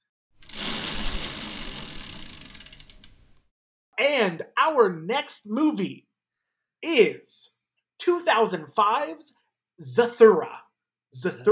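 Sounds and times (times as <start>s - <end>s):
spun prize wheel ratcheting clicks: 0.4s - 3.4s
speech: 4.0s - 6.1s, 6.8s - 11.5s.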